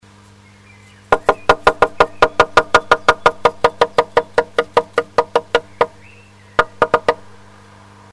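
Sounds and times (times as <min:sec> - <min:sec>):
tit knocking on a nest box: 0:01.1 - 0:07.4.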